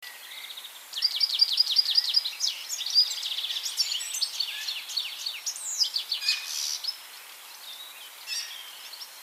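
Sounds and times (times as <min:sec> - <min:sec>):
European goldfinch song, Carduelis carduelis: 0:00.0 - 0:09.2.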